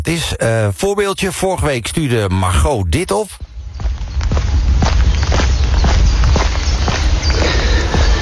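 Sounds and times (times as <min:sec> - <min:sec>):
speech: 0:00.1 - 0:03.5
footsteps crunching along an outdoor polder path: 0:03.0 - 0:08.1
constant low rumble of wind or noise: 0:03.4 - 0:08.1.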